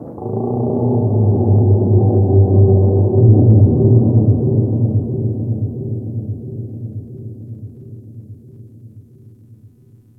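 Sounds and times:
large ocean underwater creatures: 0.0 - 7.0.

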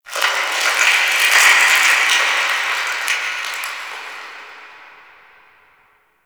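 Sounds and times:
distant ice melting: 0.1 - 4.0.

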